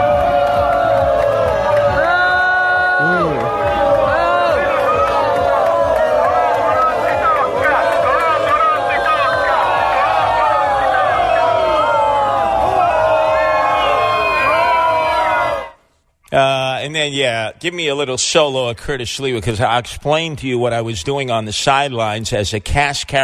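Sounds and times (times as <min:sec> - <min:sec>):
large crowd jeering and booing a politician: 0:00.0 - 0:15.8
speech: 0:17.0 - 0:23.2.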